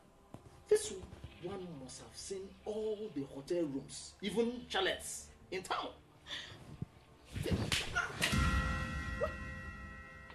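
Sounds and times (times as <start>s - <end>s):
speech: 0.7s - 6.6s
sharp slap to the face: 7.4s - 8.5s.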